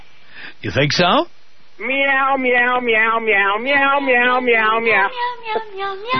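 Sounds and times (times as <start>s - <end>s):
speech: 0.6s - 6.1s
melodic sung meowing in a cat food commercial jingle: 1.8s - 6.1s.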